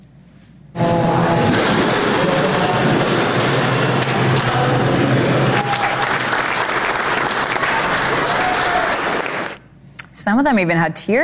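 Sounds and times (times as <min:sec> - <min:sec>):
team at an aquarium cheering: 0:00.8 - 0:09.6
team at an aquarium applauding: 0:01.4 - 0:09.6
speech: 0:10.3 - 0:11.2.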